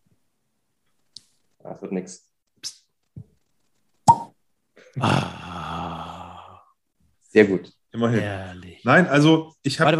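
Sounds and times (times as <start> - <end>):
speech: 1.6 - 2.8, 5.0 - 5.4, 7.3 - 9.9
dry cork popping from a nearly empty bottle: 4.0 - 4.4.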